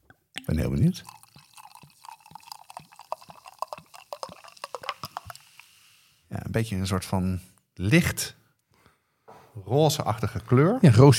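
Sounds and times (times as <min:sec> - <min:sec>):
fizzing bubbles crackling and popping: 0:00.4 - 0:05.8
homemade carbonated drink pouring from a bottle into two glasses: 0:00.4 - 0:06.0
speech: 0:00.5 - 0:01.2, 0:06.6 - 0:08.4, 0:09.6 - 0:11.1.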